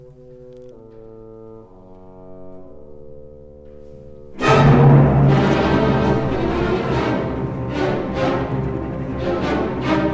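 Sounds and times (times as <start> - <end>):
orchestral symphony development section with sudden loud full chord and sharp accents: 4.3 - 10.1.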